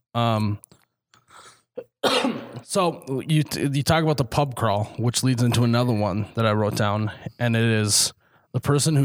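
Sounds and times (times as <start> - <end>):
speech: 0.2 - 0.8, 2.0 - 9.0
person coughing: 1.8 - 2.7.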